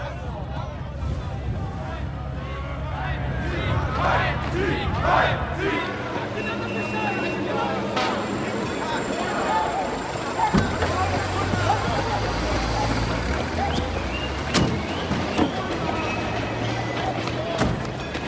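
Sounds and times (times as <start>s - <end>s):
steady car engine and road rumble in the cabin: 0.0s - 18.2s
low wind rush and buffeting through open car window: 0.3s - 2.2s, 3.0s - 5.8s.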